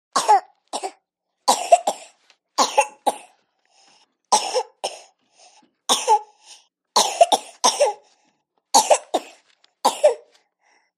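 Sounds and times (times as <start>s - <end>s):
nineteen-month-old baby girl dry coughs: 0.2s - 3.4s, 4.3s - 5.2s, 5.9s - 6.4s, 7.0s - 8.1s, 8.7s - 10.4s.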